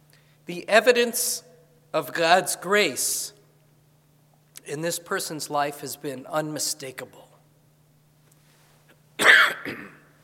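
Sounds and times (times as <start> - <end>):
speech: 0.5 - 3.4, 4.7 - 7.3
coughing and throat clearing from a tickle in the throat: 9.2 - 10.2.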